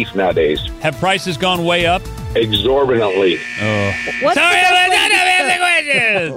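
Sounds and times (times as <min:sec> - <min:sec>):
speech: 0:00.0 - 0:06.3
timer buzzer going off: 0:02.9 - 0:05.7
laughter: 0:03.6 - 0:06.3.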